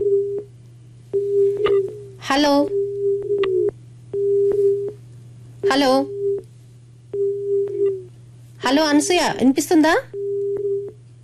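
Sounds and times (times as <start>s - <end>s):
steady mid-pitched tone of a telephone line cutting off during a radio phone-in: 0.0s - 0.5s, 1.1s - 2.1s, 2.7s - 5.0s, 6.1s - 6.4s, 7.1s - 8.1s, 10.2s - 11.0s
constant low hum on a telephone line: 0.0s - 11.2s
speech: 2.2s - 2.8s, 5.7s - 6.2s, 8.6s - 10.1s.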